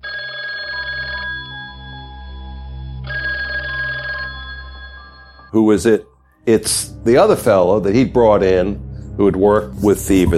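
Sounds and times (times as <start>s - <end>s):
telephone ringing in bright trilling bursts: 0.0s - 5.6s
speech: 5.5s - 10.3s.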